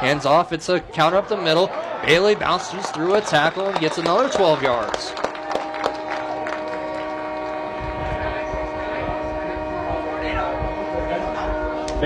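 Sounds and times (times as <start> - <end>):
speech: 0.0 - 5.3
crowd murmur: 0.0 - 12.0
loud sustained train horn blaring: 2.1 - 12.0.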